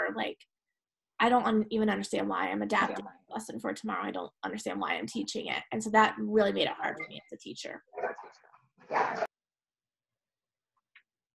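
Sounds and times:
speech: 0:00.2 - 0:00.5, 0:01.2 - 0:09.3
murmur of voice: 0:02.7 - 0:03.1
dog barking: 0:08.0 - 0:08.3, 0:08.9 - 0:09.3.

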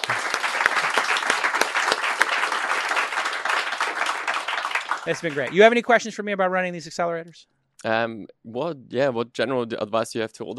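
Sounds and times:
crowd applauding: 0:00.0 - 0:06.0
speech: 0:05.0 - 0:10.5.

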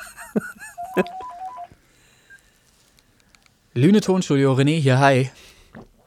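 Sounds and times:
laughter: 0:00.0 - 0:01.4
speech: 0:00.4 - 0:01.2, 0:03.8 - 0:05.5
short landline telephone keypad beeps: 0:00.8 - 0:01.7
faint click: 0:02.9 - 0:03.6.

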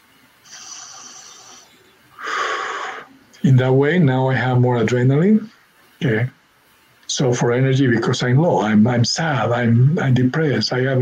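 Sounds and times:
heavy wheezy breaths during a breathing exercise of long inhales and short exhales: 0:00.4 - 0:03.2
speech: 0:03.4 - 0:06.4, 0:07.1 - 0:11.0.

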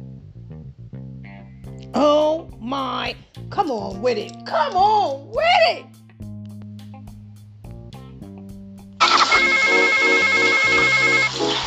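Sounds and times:
speech: 0:01.9 - 0:06.0
telephone ringing with an electronic trill: 0:09.0 - 0:11.3.

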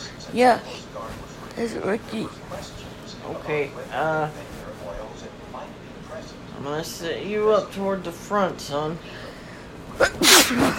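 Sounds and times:
speech: 0:00.3 - 0:00.8, 0:01.6 - 0:04.6, 0:06.2 - 0:09.2, 0:10.0 - 0:10.7
person sneezing: 0:10.0 - 0:10.7.

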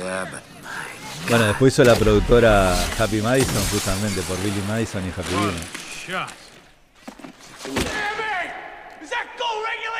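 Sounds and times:
speech: 0:00.1 - 0:00.6, 0:01.2 - 0:06.4, 0:07.6 - 0:08.1
glass window breaking in a film scene: 0:01.8 - 0:06.0.

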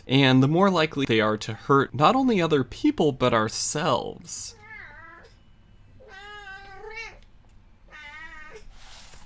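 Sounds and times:
speech: 0:00.0 - 0:04.6
cat meowing: 0:04.5 - 0:05.4, 0:06.0 - 0:07.2, 0:07.9 - 0:08.7.

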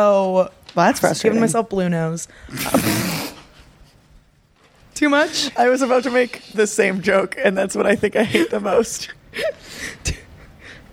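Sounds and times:
speech: 0:00.0 - 0:03.3, 0:05.0 - 0:10.2
loud sneeze: 0:02.6 - 0:03.6.

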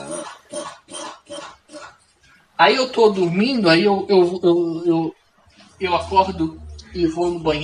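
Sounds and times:
squeaky rubber duck toy being squeezed: 0:00.0 - 0:01.9
speech: 0:02.6 - 0:05.2, 0:05.8 - 0:07.6.

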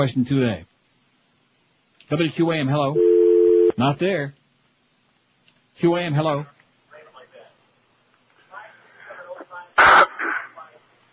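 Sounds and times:
speech: 0:00.0 - 0:00.7, 0:02.1 - 0:03.1, 0:03.8 - 0:04.4, 0:05.8 - 0:06.6
man clearing his throat: 0:09.8 - 0:10.6.

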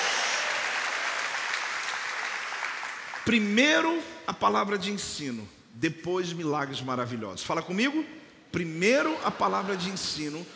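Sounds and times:
audience applauding: 0:00.0 - 0:03.3
speech: 0:03.3 - 0:10.5.

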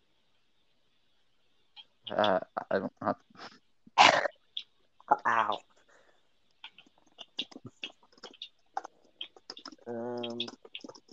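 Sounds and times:
speech: 0:02.1 - 0:03.6
rapid forceful typing on a computer keyboard: 0:06.7 - 0:11.1.

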